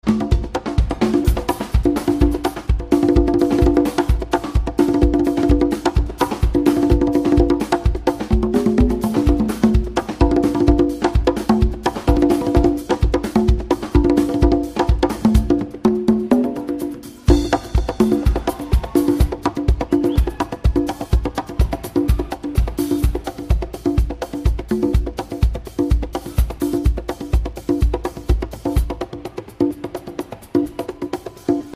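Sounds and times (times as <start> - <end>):
percussion jam: 0.0 - 31.7.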